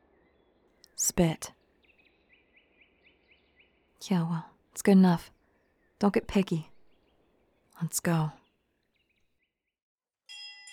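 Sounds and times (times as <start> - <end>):
speech: 1.0 - 1.6, 4.0 - 5.4, 6.0 - 6.7, 7.8 - 8.4
ship's bell ringing: 10.3 - 10.7.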